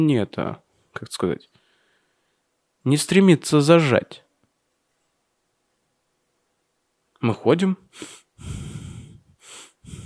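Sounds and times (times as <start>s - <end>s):
speech: 0.0s - 1.6s, 2.8s - 4.2s, 7.2s - 8.6s
audible breathing in and out: 1.5s - 2.6s, 7.9s - 10.0s.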